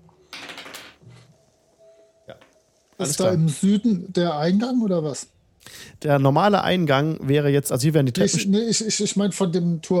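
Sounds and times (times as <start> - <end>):
dice clattering across a hard surface: 0.3 - 1.0
speech: 3.0 - 5.4, 6.0 - 9.9.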